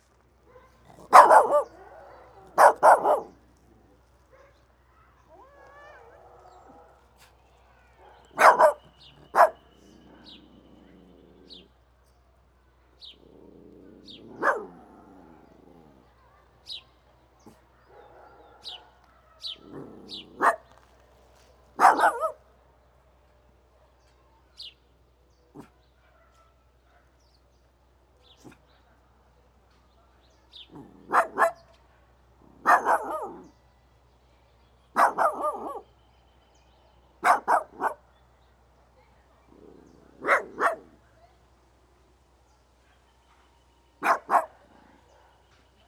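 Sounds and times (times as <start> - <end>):
dog barking outdoors in village at Playa Pascual Uruguay by day: 0.5 - 3.4, 4.3 - 11.7, 13.2 - 16.4, 17.4 - 20.9, 21.8 - 22.4, 25.5 - 27.2, 30.1 - 33.6, 34.9 - 36.0, 37.2 - 38.1, 39.4 - 41.0, 44.0 - 45.4.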